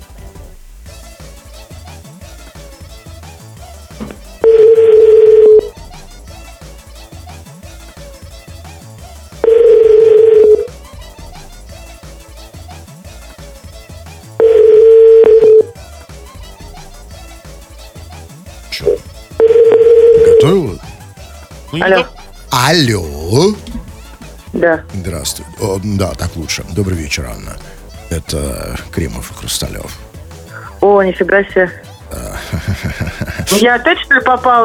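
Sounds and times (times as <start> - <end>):
telephone ringback tone: 4.4 - 5.7, 9.4 - 10.7, 14.4 - 15.7, 19.4 - 20.6
speech: 21.8 - 23.7, 24.6 - 30.1, 31.0 - 32.2, 32.8 - 34.6
laughter: 32.1 - 34.2.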